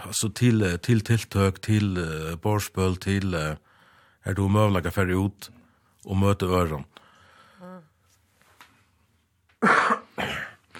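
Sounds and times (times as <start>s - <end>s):
speech: 0.1s - 3.6s, 4.2s - 7.0s
harsh loud coughs: 9.6s - 10.7s.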